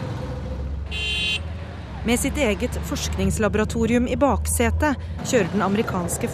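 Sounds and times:
busy road traffic rumble in New Delhi India heard from an auto rickshaw: 0.0 - 6.3
car horn honk: 0.9 - 1.5
speech: 2.0 - 6.3.

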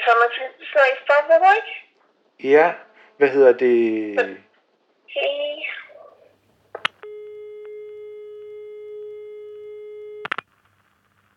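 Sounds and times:
faint noise: 0.0 - 11.3
speech: 0.1 - 4.5, 5.1 - 5.7
steady electronic telephone tone at the end of a call: 7.0 - 10.5.

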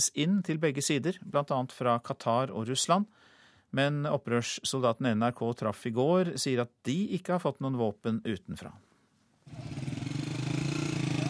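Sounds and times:
speech: 0.0 - 8.9
small moped engines of young men riding home in Azaz northern Syria: 9.5 - 11.2.

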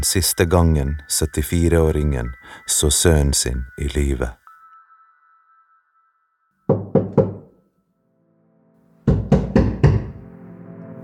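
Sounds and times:
speech: 0.0 - 4.4
person knocking on a house door: 6.7 - 7.6, 9.1 - 10.2.

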